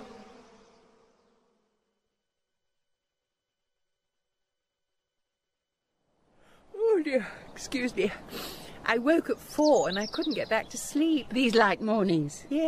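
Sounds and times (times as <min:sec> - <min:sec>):
swarm of bees buzzing: 0:00.0 - 0:01.9
speech: 0:07.0 - 0:12.6.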